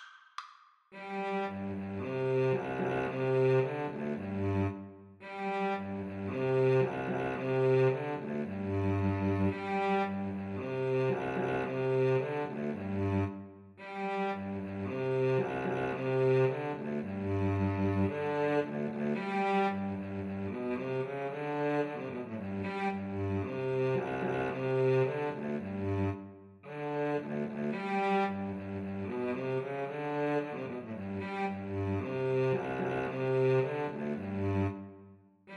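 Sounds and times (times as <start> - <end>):
mandolin and cello duet: 1.0 - 26.2, 26.8 - 34.8.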